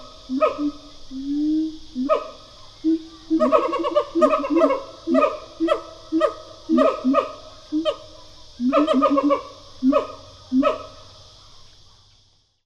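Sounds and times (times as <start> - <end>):
constant high-pitched hiss: 0.0 - 12.6
pair of siamangs giving duet calls: 2.0 - 10.9.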